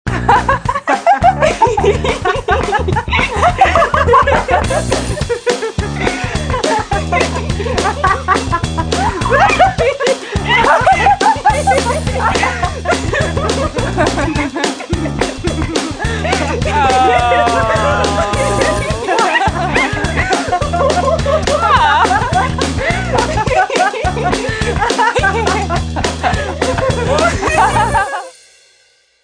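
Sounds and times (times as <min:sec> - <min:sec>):
giggling ringtone on a mobile phone: 0:01.0 - 0:28.4.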